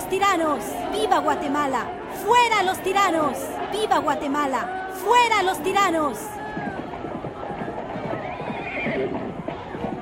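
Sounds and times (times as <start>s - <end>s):
clatter of horse hooves clip-clopping in Guatemala: 0.0s - 9.9s
speech: 0.1s - 6.7s
horses ridden by officers whinnying in Guatemala: 6.6s - 9.4s.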